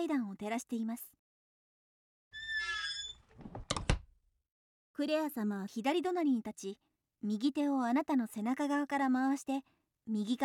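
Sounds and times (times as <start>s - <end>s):
speech: 0.0s - 1.2s, 5.0s - 10.4s
blue corridor door creaking open with a whining hinge squeak: 2.4s - 4.0s
sharp clicks and soft thunk of the door latch: 3.4s - 4.1s.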